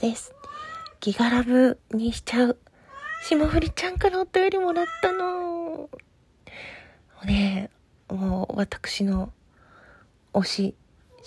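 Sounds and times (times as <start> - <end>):
speech: 0.0 - 0.4, 1.0 - 9.4, 10.3 - 11.2
cat meowing in the background: 0.2 - 1.0, 2.8 - 3.8, 4.6 - 5.6.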